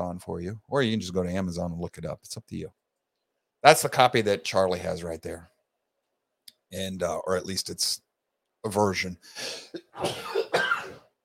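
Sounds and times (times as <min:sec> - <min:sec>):
speech: 0:00.0 - 0:02.8, 0:03.6 - 0:05.5, 0:06.7 - 0:08.0, 0:08.6 - 0:10.4
person coughing into microphone: 0:09.5 - 0:11.1.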